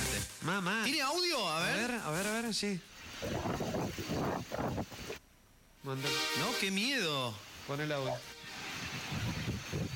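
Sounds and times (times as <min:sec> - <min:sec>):
speech: 0:00.4 - 0:04.9, 0:05.8 - 0:08.4
strong wind gusts shaking eucalyptus trees: 0:03.0 - 0:05.2, 0:07.5 - 0:09.9
heavy wind buffeting on the microphone: 0:03.2 - 0:05.2, 0:08.8 - 0:09.9.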